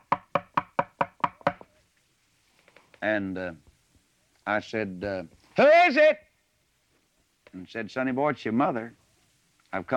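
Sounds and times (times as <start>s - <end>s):
knocking on a wooden door: 0.0s - 1.6s
speech: 3.0s - 3.7s, 4.5s - 6.2s, 7.6s - 9.0s, 9.7s - 9.9s.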